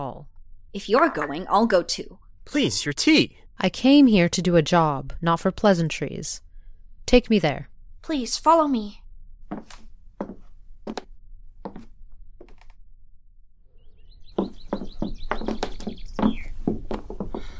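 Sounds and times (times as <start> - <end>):
speech: 0.1 - 6.5, 7.1 - 10.3
knocks or footsteps: 9.4 - 12.8, 14.3 - 17.5
orioles singing in cages in a woman's room: 13.7 - 17.5.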